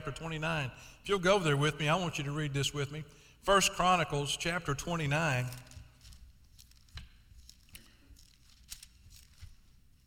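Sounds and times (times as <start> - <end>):
speech: 0.0 - 5.7
many thin Bible pages being flipped: 4.7 - 10.0.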